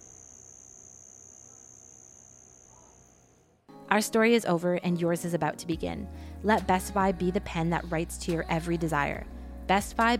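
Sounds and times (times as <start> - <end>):
cicada buzzing: 0.0 - 3.4
speech: 3.9 - 10.1.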